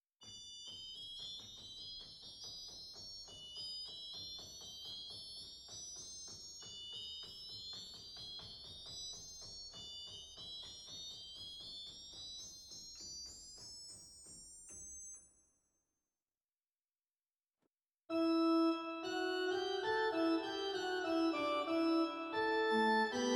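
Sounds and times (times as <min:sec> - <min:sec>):
pipe organ cymbel stop in Zwolle: 0:18.1 - 0:23.3.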